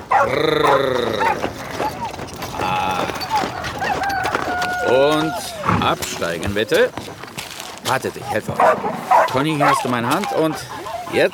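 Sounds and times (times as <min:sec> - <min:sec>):
dog barking cheerfully and excitedly: 0:00.0 - 0:02.4, 0:03.2 - 0:05.7, 0:08.1 - 0:11.3
speech: 0:00.2 - 0:03.2, 0:04.9 - 0:07.2, 0:07.9 - 0:11.3.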